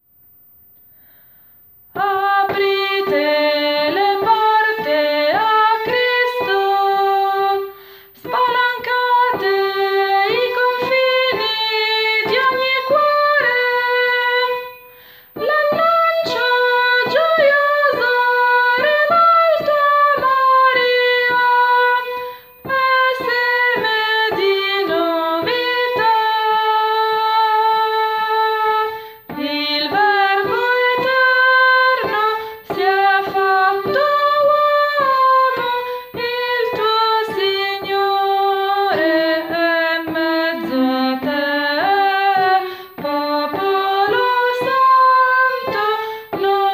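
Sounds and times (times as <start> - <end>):
contralto voices: 1.9 - 46.7.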